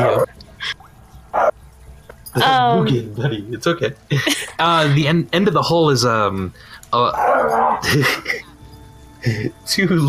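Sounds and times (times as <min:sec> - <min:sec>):
speech: 0:02.4 - 0:08.3, 0:09.2 - 0:10.0
laughter: 0:02.6 - 0:05.2, 0:07.6 - 0:08.6, 0:09.2 - 0:09.7
dog growling: 0:07.1 - 0:08.0.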